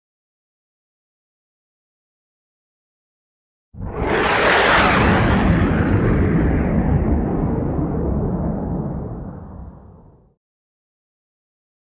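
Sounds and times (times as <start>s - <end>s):
jet: 3.8s - 10.4s.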